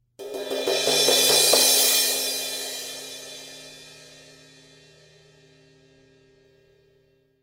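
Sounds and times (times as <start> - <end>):
medium thin crash cymbal build and crash: 0.3 - 5.4.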